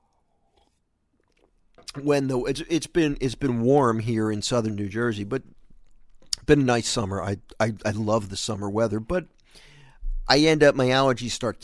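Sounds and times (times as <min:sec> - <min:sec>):
person sipping water: 0:00.0 - 0:02.0, 0:05.4 - 0:06.5
speech: 0:01.8 - 0:05.6, 0:06.5 - 0:09.7, 0:10.3 - 0:11.6.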